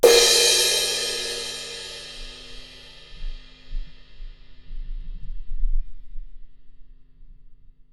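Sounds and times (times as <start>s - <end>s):
drum kit crash cymbal: 0.0s - 4.7s.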